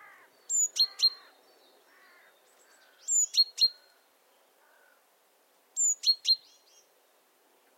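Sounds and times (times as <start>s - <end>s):
great tit Parus major giving bright piercing calls: 0.5s - 1.3s.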